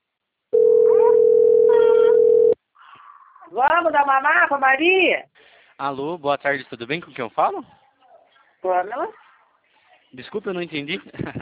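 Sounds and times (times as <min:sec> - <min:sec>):
ringback tone of an outgoing telephone call: 0:00.6 - 0:02.6
speech: 0:03.8 - 0:07.8, 0:08.6 - 0:09.2, 0:10.1 - 0:11.4.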